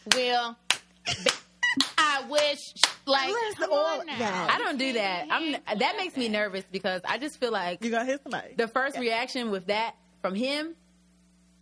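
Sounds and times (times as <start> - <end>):
hand clapping: 0.0 - 3.1
speech: 0.0 - 10.8.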